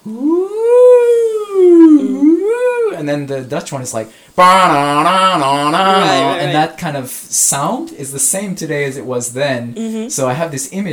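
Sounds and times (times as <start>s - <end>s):
speech: 0.0s - 0.4s, 3.1s - 10.9s
voice imitating an American police siren: 0.0s - 3.0s, 4.4s - 6.5s.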